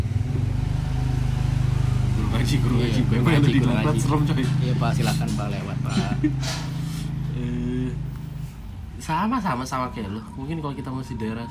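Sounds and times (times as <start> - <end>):
motorcycle engine passing by: 0.0 - 8.8
speech: 2.4 - 6.7, 9.1 - 11.4
laughter: 5.7 - 6.8.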